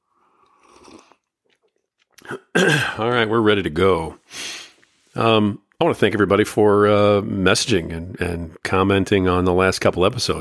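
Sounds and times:
person slurping hot coffee: 0:00.1 - 0:02.7
soft mouth clicks: 0:00.4 - 0:02.6
speech: 0:02.3 - 0:04.2, 0:05.2 - 0:10.3.

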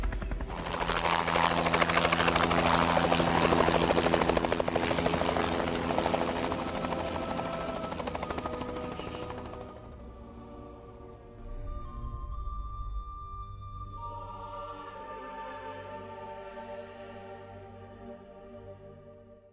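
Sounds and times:
helicopter rotor chopping as it descends onto a fenced-off roof: 0:00.0 - 0:10.1
deep helicopter engine drone: 0:00.0 - 0:11.5.

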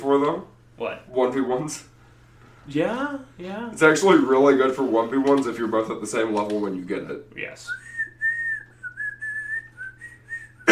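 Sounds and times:
speech: 0:00.1 - 0:01.9, 0:02.6 - 0:07.9
person whistling a tune: 0:07.7 - 0:10.7.

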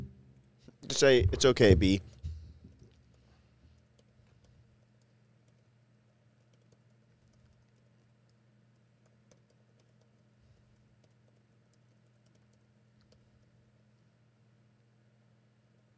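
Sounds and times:
low hum: 0:00.0 - 0:15.9
speech: 0:00.8 - 0:02.1
quiet computer keyboard typing an email: 0:03.8 - 0:05.7, 0:06.4 - 0:13.5.

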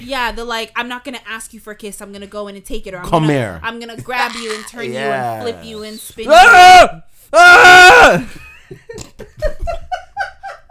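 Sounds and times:
speech: 0:00.0 - 0:09.3
man screaming: 0:04.2 - 0:08.3.

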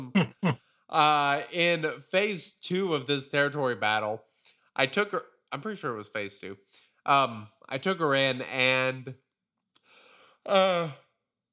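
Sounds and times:
speech: 0:00.0 - 0:09.2, 0:10.4 - 0:11.0
voiced yawn: 0:10.5 - 0:11.0.

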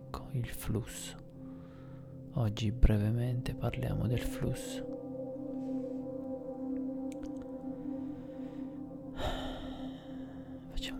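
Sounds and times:
steady low humming drone: 0:00.0 - 0:10.9
speech: 0:00.4 - 0:01.2, 0:02.4 - 0:04.9
deep breath: 0:01.4 - 0:02.3, 0:07.8 - 0:10.7.

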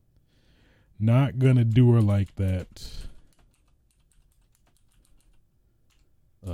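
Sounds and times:
speech: 0:01.0 - 0:03.1
typing on a computer keyboard: 0:01.5 - 0:06.1.

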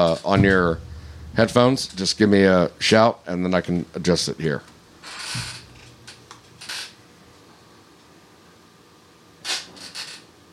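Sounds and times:
speech: 0:00.0 - 0:05.5
chair creaking and clicking: 0:05.0 - 0:07.0, 0:09.5 - 0:10.3.

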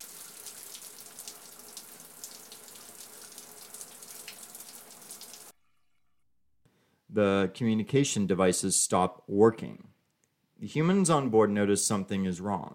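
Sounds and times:
shower on a ship running: 0:00.0 - 0:05.5
speech: 0:07.2 - 0:09.9, 0:10.6 - 0:12.7.

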